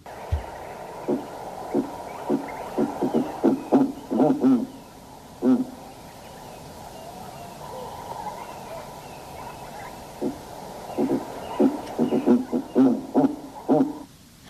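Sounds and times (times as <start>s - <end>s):
faint outdoor hiss: 0.0s - 14.4s
giant eagle-owl deep low booming hoots: 0.1s - 14.1s.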